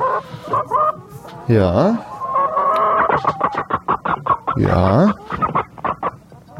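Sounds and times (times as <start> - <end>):
excited agitated chicken squawking while being held and stroked: 0.0 - 6.3
speech: 1.5 - 2.1, 4.6 - 5.2.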